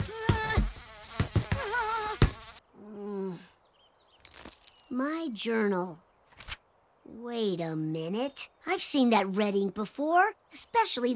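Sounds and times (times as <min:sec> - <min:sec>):
bee buzzing: 0:00.0 - 0:02.7
speech: 0:04.9 - 0:06.0, 0:07.1 - 0:11.1.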